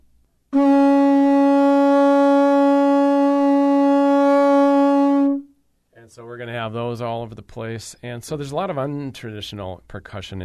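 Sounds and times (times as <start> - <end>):
conch shell blown into a low buzzy horn tone: 0.5 - 5.6
speech: 6.1 - 10.4.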